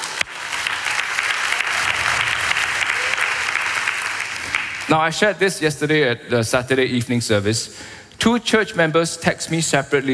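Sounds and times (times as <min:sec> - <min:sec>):
church audience clapping and applauding: 0:00.0 - 0:05.2
speech: 0:04.9 - 0:10.1.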